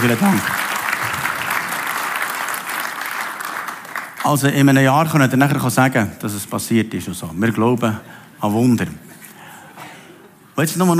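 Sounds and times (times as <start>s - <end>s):
speech: 0.0s - 0.6s, 4.2s - 9.1s, 10.6s - 10.9s
congregation applauding with many hands clapping: 0.0s - 4.3s.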